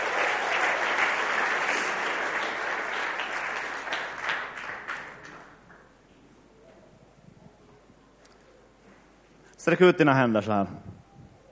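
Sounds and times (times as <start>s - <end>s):
crowd applauding: 0.0s - 5.8s
speech: 9.6s - 10.9s.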